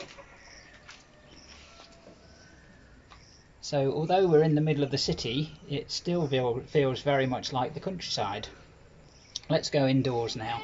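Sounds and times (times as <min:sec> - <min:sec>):
chickens clucking faintly outdoors on a back balcony among maize fields: 0:00.0 - 0:02.2
steady outdoor hiss: 0:00.0 - 0:10.6
speech: 0:03.7 - 0:08.6, 0:09.5 - 0:10.6.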